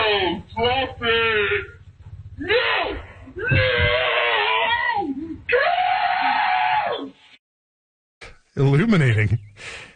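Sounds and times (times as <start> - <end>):
speech: 0.5 - 1.8, 8.6 - 9.9
mother and children screaming, slowed down: 2.4 - 7.2.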